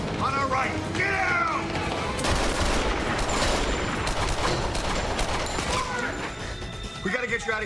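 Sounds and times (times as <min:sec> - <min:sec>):
speech: 0:00.2 - 0:01.2, 0:07.0 - 0:07.6
sustained barrage of gunfire in a car park: 0:01.8 - 0:06.2.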